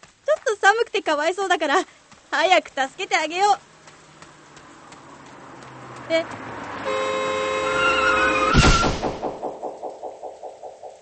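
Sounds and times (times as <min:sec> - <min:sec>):
speech: 0:00.7 - 0:03.7, 0:06.1 - 0:07.3
car horn blaring: 0:06.8 - 0:08.5
loud collision thud of a car hitting a person: 0:08.5 - 0:10.9
rhythmic thumps: 0:08.6 - 0:10.9.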